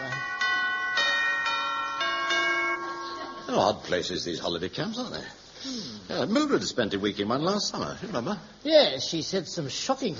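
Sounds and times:
doorbell chimes: 0.0s - 3.7s
speech: 3.5s - 10.1s.

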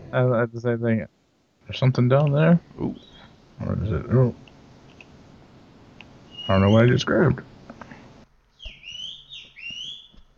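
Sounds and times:
speech: 0.1s - 4.5s, 6.5s - 7.5s
man whistling loudly across a parking lot: 6.3s - 6.9s.

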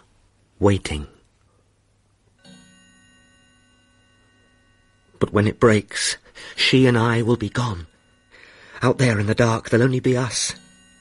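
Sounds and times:
speech: 0.6s - 1.1s, 5.2s - 7.9s, 8.8s - 10.6s
single resonant metallic clock tick: 2.2s - 11.0s.

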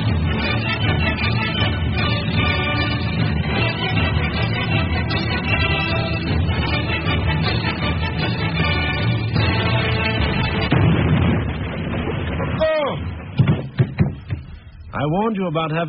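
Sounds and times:
loud orchestral music: 0.0s - 11.6s
sharp booming cannon-shot blasts: 9.4s - 14.6s
speech: 15.1s - 15.8s.

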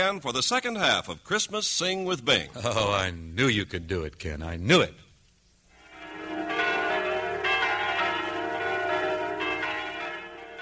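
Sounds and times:
speech: 0.0s - 5.1s
bells of the Church of the Holy Sepulchre in Jerusalem pealing on Christmas Eve: 5.8s - 10.5s.

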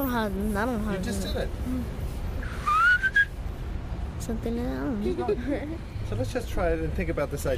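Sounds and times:
speech: 0.0s - 2.0s, 4.3s - 7.5s
person whistling an imitation of a blackbird: 2.4s - 3.3s.

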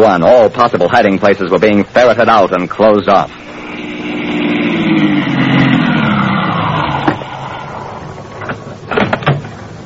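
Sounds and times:
speech: 0.0s - 3.5s
car engine winding down as the vehicle slows to a stop: 3.3s - 9.1s.

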